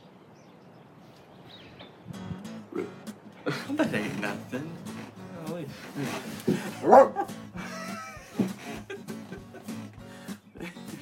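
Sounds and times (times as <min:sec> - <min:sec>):
speech: 0:02.8 - 0:04.9, 0:05.6 - 0:07.3
laughter: 0:03.4 - 0:04.9, 0:05.7 - 0:11.0
dog barking and yipping: 0:06.7 - 0:07.3.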